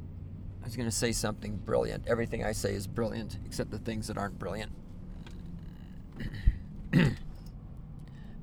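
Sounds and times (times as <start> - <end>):
speech: 0.7 - 4.8
person clearing throat into the microphone: 6.2 - 7.4.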